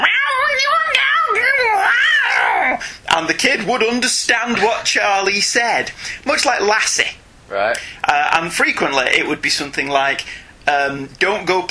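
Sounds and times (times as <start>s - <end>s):
person imitating a cartoon cat with warbling garbled meows: 0.0s - 2.8s
speech: 3.2s - 11.6s.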